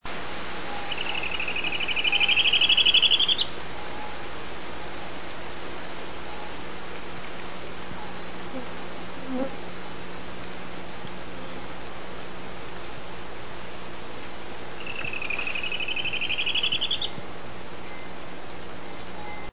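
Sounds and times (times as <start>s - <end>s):
hooded gnateater singing: 0.5s - 5.5s, 6.2s - 6.7s, 7.9s - 9.6s, 14.0s - 19.5s.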